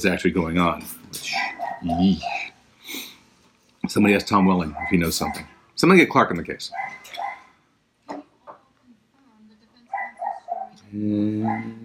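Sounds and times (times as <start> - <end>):
speech: 0.0 - 3.0, 3.8 - 7.2, 10.9 - 11.8
neighbor's dogs barking: 1.2 - 2.6, 3.9 - 5.6, 6.7 - 7.6, 9.9 - 10.8, 11.4 - 11.8
dog howling bark: 1.3 - 2.4, 4.5 - 5.5, 6.7 - 7.5, 9.9 - 10.8, 11.4 - 11.8.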